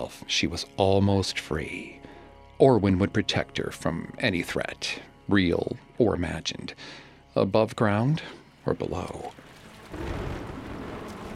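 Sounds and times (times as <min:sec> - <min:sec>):
speech: 0:00.0 - 0:02.0, 0:02.6 - 0:10.4
heavy rain pouring down: 0:09.4 - 0:11.3
deep thunder rumble: 0:09.6 - 0:11.3.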